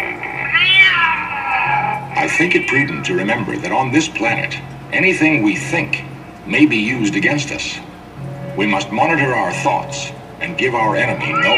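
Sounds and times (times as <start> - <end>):
cat yowling meow: 0.0 - 3.1, 11.1 - 11.5
speech: 2.2 - 7.9, 8.6 - 11.5.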